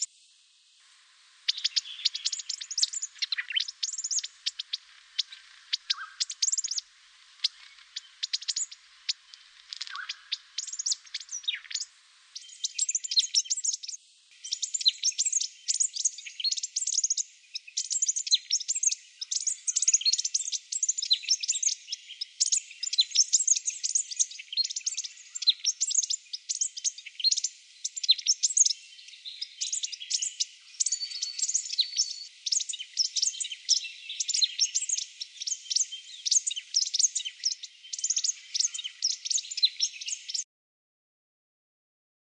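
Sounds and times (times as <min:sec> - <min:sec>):
Buff-rumped Thornbill, Australasian warbler, in a Canberra garden: 0:01.5 - 0:17.1, 0:17.8 - 0:40.4.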